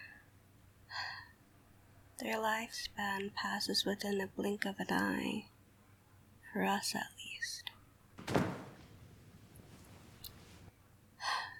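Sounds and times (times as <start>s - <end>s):
speech: 2.2s - 5.5s, 6.6s - 7.7s
head knocking against something hard: 8.2s - 10.7s.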